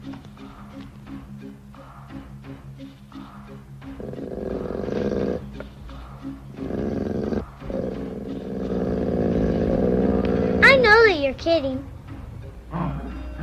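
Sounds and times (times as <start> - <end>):
dog growling: 3.8 - 10.8
speech: 11.3 - 11.9.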